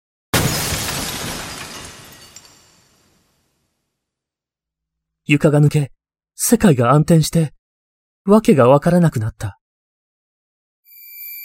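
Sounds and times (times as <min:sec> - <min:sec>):
small pieces of metal settling: 0:00.4 - 0:03.3
hard metal shattering with a loud crash: 0:00.4 - 0:03.6
speech: 0:05.3 - 0:07.6, 0:08.2 - 0:09.6.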